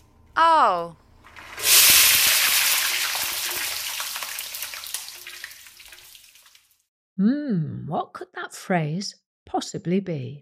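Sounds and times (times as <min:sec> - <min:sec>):
speech: 0:00.4 - 0:01.0, 0:07.2 - 0:10.4
food frying in boiling oil: 0:01.3 - 0:06.9.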